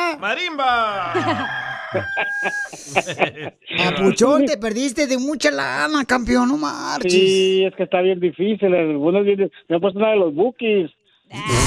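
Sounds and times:
speech: 0.2s - 11.6s
laughter: 0.3s - 4.2s
rooster crowing: 1.0s - 2.8s.

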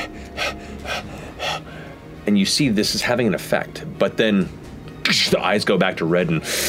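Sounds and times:
voice imitating a creature's growl and calm breathing: 0.0s - 1.9s
speech: 2.3s - 6.6s.

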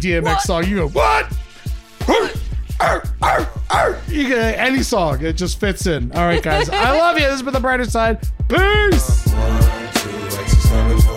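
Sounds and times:
speech: 0.0s - 1.4s, 2.1s - 10.2s
low thumping beat: 0.0s - 9.7s
person imitating gruff dog barks: 0.2s - 0.5s, 2.1s - 4.1s
laughter: 6.0s - 7.4s.

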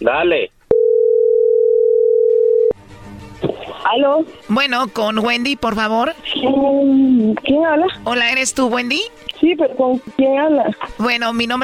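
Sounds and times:
speech: 0.0s - 0.6s, 3.9s - 11.6s
telephone dial tone: 0.7s - 2.8s.

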